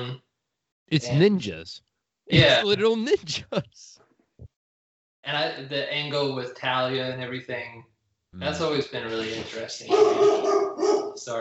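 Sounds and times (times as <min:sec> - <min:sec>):
speech: 0:00.0 - 0:00.3, 0:00.9 - 0:04.0, 0:05.2 - 0:11.4
person laughing: 0:02.3 - 0:03.8
dog barking: 0:09.9 - 0:11.2.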